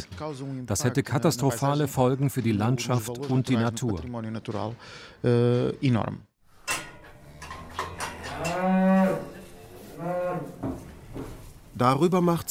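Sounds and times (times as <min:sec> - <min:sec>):
speech: 0:00.0 - 0:06.3, 0:11.8 - 0:12.4
cows mooing in a barn: 0:07.1 - 0:11.2
shuffling: 0:09.0 - 0:12.2.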